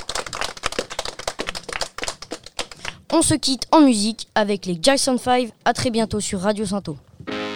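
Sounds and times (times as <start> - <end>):
audience at a school open day applauding: 0.0 - 3.0
speech: 3.1 - 7.4.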